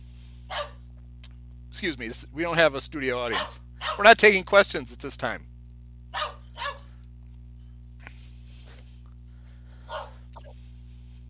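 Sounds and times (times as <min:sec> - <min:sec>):
low electrical hum: 0:00.0 - 0:11.2
dogs barking: 0:00.5 - 0:00.8, 0:03.3 - 0:04.1, 0:06.1 - 0:07.0, 0:09.8 - 0:10.3
speech: 0:01.8 - 0:05.5.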